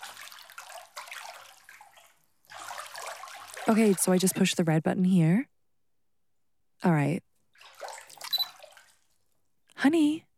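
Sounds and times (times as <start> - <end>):
water splashing and sloshing in a tub during washing: 0.0 - 4.4, 7.5 - 9.3
speech: 3.7 - 5.5, 6.8 - 7.3, 9.8 - 10.3.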